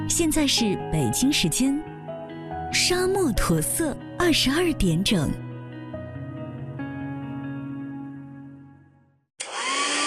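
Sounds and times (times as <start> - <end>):
speech: 0.1 - 1.9, 2.7 - 5.5
hair dryer blowing: 9.4 - 10.0.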